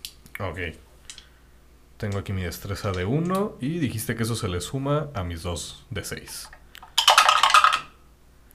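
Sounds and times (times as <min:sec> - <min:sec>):
speech: 0:00.4 - 0:00.9, 0:02.0 - 0:06.6
dice tumbling across a hard tabletop: 0:06.9 - 0:08.0.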